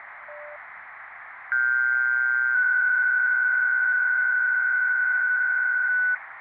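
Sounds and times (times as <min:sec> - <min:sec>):
PSK125 amateur radio mode signal: 0:01.5 - 0:06.2.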